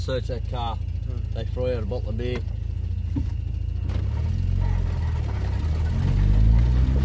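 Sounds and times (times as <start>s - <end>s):
car engine at full revs lurching and sliding through sand: 0.0s - 7.0s.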